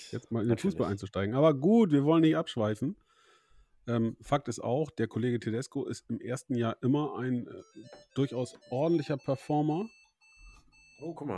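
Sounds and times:
speech: 0.1 - 3.1, 3.9 - 10.0, 11.0 - 11.3
telephone ringing with a high electronic trill: 7.5 - 11.2.

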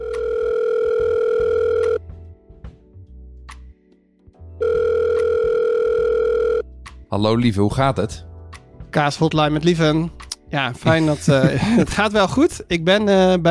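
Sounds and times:
telephone ringback tone on an outgoing call: 0.0 - 2.0, 4.6 - 6.6
speech: 7.2 - 8.3, 8.9 - 13.4
laughter: 10.8 - 12.2.

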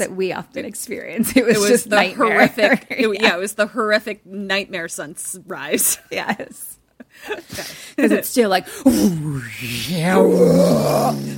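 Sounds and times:
speech: 0.0 - 11.3
laughter: 1.3 - 3.4
person imitating the roar of the sun with their voice: 9.0 - 11.3.

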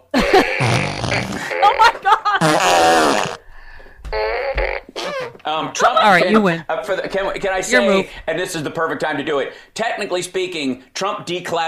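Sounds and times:
laughter: 0.0 - 2.7
fart noises from a toy fart gun: 0.4 - 1.7, 2.4 - 3.4, 4.1 - 5.4
speech: 6.0 - 11.6.

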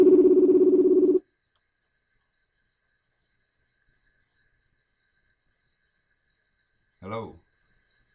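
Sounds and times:
electronic ringback tone from an outgoing phone call: 0.0 - 1.2.

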